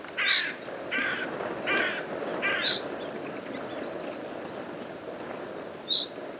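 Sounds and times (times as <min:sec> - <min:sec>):
carrion crow Corvus corone cawing: 0:00.1 - 0:03.5
another bird chirping: 0:00.1 - 0:06.1.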